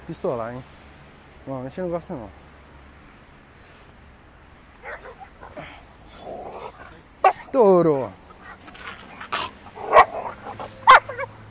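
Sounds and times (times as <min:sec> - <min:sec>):
speech: 0:00.1 - 0:00.8, 0:01.5 - 0:02.4, 0:07.5 - 0:08.2
dog barking at a passing dog: 0:04.8 - 0:07.6, 0:08.3 - 0:11.4.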